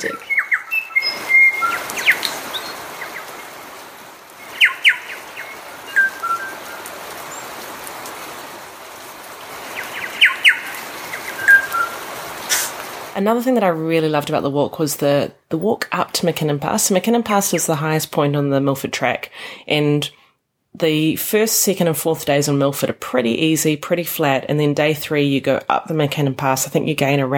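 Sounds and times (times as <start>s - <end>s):
bellbirds singing in lush green native bush on the Milford Track: 0.0s - 3.4s, 4.4s - 7.6s, 9.7s - 12.0s
steady hiss: 0.0s - 13.9s
speech: 13.2s - 20.2s, 20.8s - 27.3s.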